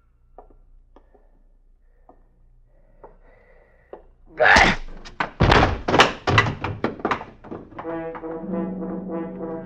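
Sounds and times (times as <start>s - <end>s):
heavy thudding bludgeoning blows: 4.4s - 9.5s.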